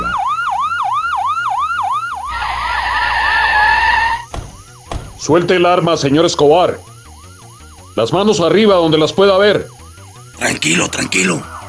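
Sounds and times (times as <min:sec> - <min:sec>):
police motorcycle sirens wailing: 0:00.0 - 0:04.3, 0:05.3 - 0:11.6
speech: 0:05.3 - 0:06.9, 0:08.0 - 0:09.8, 0:10.4 - 0:11.5.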